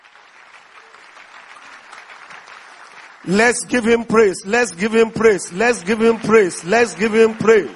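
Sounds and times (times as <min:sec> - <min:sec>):
audience applause: 0:00.0 - 0:07.7
speech: 0:03.2 - 0:07.7.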